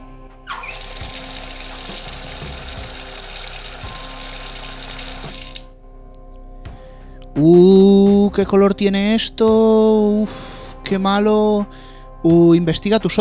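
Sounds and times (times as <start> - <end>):
water pouring in a steady loud stream: 0.5 - 5.7
speech: 7.4 - 13.2.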